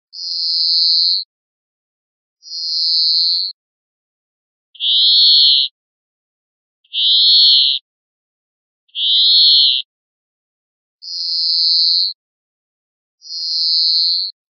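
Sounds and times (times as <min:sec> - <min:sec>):
greenfinch calls: 0:00.2 - 0:01.3, 0:02.4 - 0:03.6, 0:04.8 - 0:05.8, 0:06.9 - 0:07.8, 0:08.9 - 0:09.9, 0:11.0 - 0:12.2, 0:13.2 - 0:14.4.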